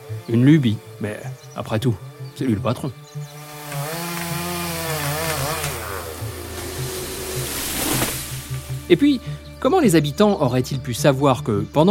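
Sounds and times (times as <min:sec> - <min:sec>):
speech: 0:00.3 - 0:03.4, 0:08.9 - 0:11.8
chainsaw cutting down a large fir tree: 0:03.2 - 0:08.9.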